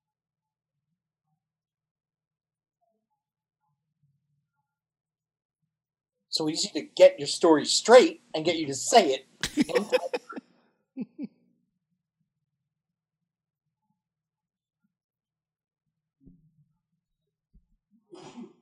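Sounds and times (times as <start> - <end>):
speech: 6.4 - 10.2
laughter: 9.4 - 10.4, 11.0 - 11.3
person sneezing: 9.4 - 10.4, 18.2 - 18.6.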